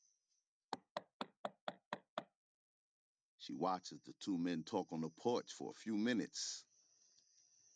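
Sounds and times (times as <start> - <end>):
sheriff knocking on a house door: 0.8 - 2.3
speech: 3.4 - 6.7.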